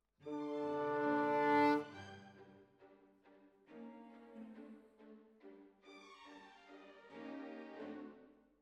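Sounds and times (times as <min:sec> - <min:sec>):
clarinet: 0:00.3 - 0:01.9.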